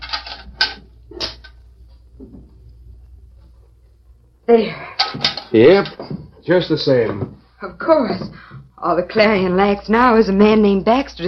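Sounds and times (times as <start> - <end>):
crisp scraping and rattling of an oil lamp being lit: 0.0 - 2.1, 5.0 - 6.2
speech: 4.5 - 11.2.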